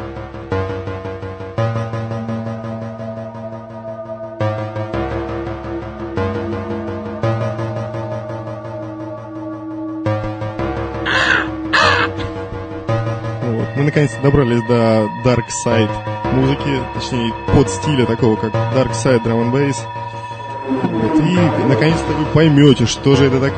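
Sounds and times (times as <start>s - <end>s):
dark droning music with heavy low tones: 0.0s - 23.5s
crows cawing outside a window: 11.1s - 12.3s
speech: 14.0s - 20.0s, 21.1s - 23.5s.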